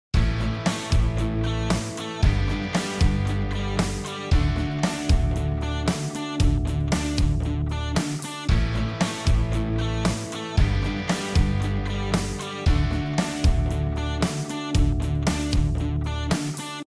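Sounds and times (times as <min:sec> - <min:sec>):
V IV I chord progression: 0:00.2 - 0:16.8.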